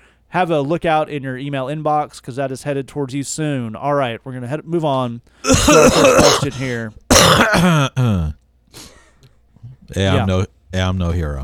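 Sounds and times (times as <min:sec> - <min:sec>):
speech: 0:00.3 - 0:08.9, 0:09.9 - 0:11.4
faint grunt: 0:05.4 - 0:08.4
loud cough into a shared microphone windscreen: 0:05.4 - 0:08.4.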